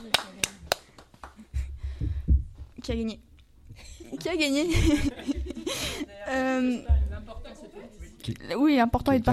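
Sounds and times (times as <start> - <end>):
hand claps: 0.0 - 1.6
speech: 2.9 - 3.3, 4.2 - 5.1, 6.3 - 7.0, 8.3 - 9.3
laughter: 3.8 - 6.2.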